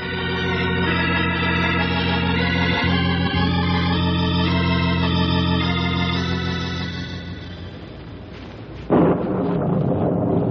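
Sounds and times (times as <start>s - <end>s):
dramatic musical drone: 0.0s - 8.3s
loud thunderclap rumbling as a storm closes in: 8.9s - 10.4s.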